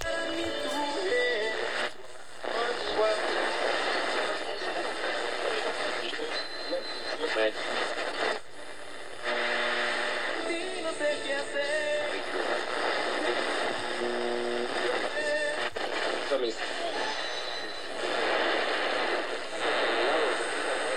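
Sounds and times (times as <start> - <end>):
radio static noise: 0.0 - 20.9.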